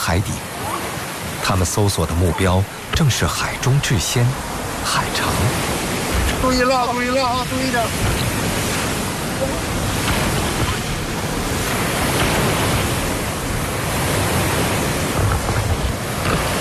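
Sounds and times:
rough churning sea waves more than 1 metre high in a bay: 0.0 - 16.5
speech: 0.1 - 0.7, 1.4 - 5.7, 6.4 - 8.3
force-7 northwesterly wind roaring over a bay: 2.3 - 16.5.

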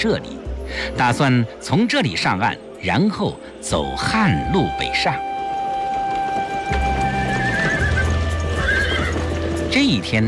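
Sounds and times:
speech: 0.0 - 5.3, 9.8 - 10.2
horse hooves clip-clopping: 4.0 - 10.2
horse pulling a carriage neighing: 6.6 - 9.6.

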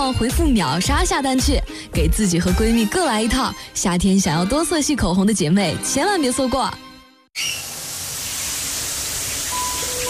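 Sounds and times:
speech: 0.0 - 6.8, 7.4 - 7.6
water spraying from a 160 mm shower head: 7.6 - 10.0.

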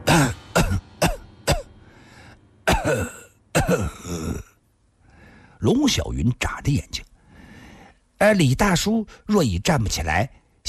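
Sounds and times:
person coughing: 0.0 - 1.7, 2.7 - 4.6
breathy gasp and strained breaths: 1.8 - 2.5, 5.0 - 5.6, 7.2 - 8.0
speech: 2.9 - 4.5, 5.6 - 7.1, 8.2 - 10.6.

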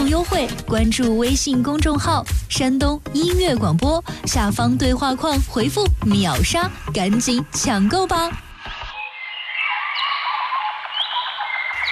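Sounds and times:
speech: 0.1 - 8.4
chorus of birds chirping and trilling: 9.0 - 11.8
rising bird whistles: 9.0 - 11.8.

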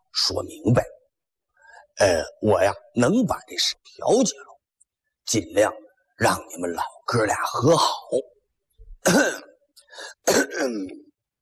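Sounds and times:
speech: 0.2 - 1.0, 2.0 - 4.5, 5.3 - 8.3, 9.0 - 11.0
old man's throat-clearing cough: 9.0 - 9.6, 10.2 - 11.1.

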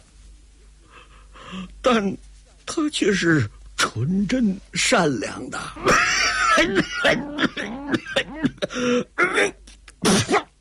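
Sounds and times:
speech: 1.5 - 10.5
man imitating an old man coughing and hacking up phlegm: 5.8 - 10.6.

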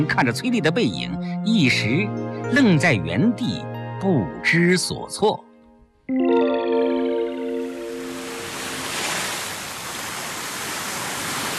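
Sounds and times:
speech: 0.0 - 5.5
sea waves rolling on a beach: 7.0 - 11.5.

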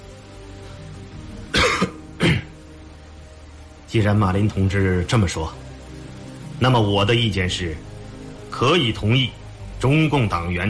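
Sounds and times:
man coughing: 1.5 - 2.6
speech: 3.9 - 5.6, 6.6 - 7.9, 8.5 - 10.6.

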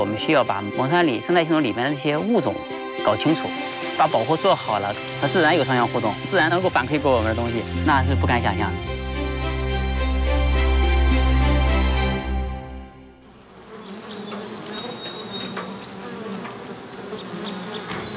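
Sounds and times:
speech: 0.0 - 9.0
dense swarm of Chinese honeybees buzzing: 0.0 - 12.3, 13.1 - 18.1
scattered insect whines: 2.1 - 7.1, 13.4 - 18.1.

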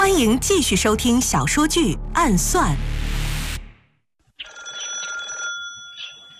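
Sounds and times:
speech: 0.2 - 2.9
old-fashioned telephone bell ringing in the next room: 4.4 - 6.3.

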